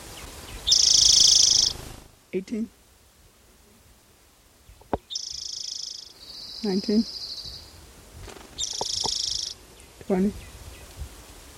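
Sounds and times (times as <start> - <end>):
orange-crowned warbler singing a high rapid even trill: 0.2 - 1.8, 5.1 - 7.7, 8.6 - 9.6
speech: 2.3 - 2.8, 6.6 - 7.2, 10.1 - 10.5.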